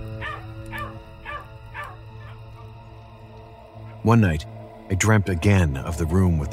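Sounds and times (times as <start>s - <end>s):
dog barking: 0.2s - 2.7s
speech: 4.0s - 6.5s.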